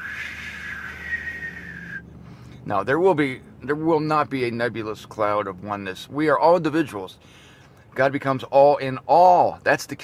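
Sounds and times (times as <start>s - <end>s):
voice imitating a whistle: 0.0s - 2.1s
speech: 2.6s - 7.4s, 8.0s - 10.0s.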